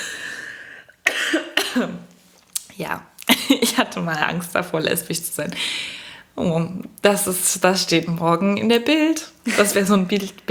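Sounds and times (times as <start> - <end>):
person coughing: 1.0 - 2.0
speech: 1.8 - 2.1, 2.8 - 10.4.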